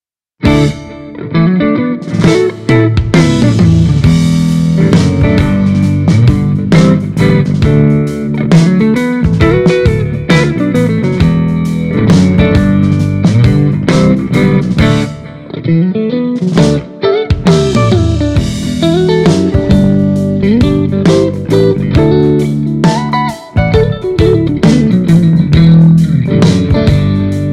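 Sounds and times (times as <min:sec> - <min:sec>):
65 Stratocaster electric guitar through G12H speaker: 0:00.4 - 0:27.5.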